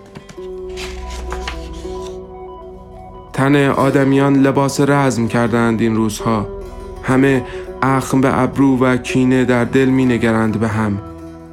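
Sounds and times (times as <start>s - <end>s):
paper page being turned: 0.0s - 2.2s
low musical drone: 0.0s - 11.5s
speech: 0.4s - 0.9s, 3.4s - 11.1s.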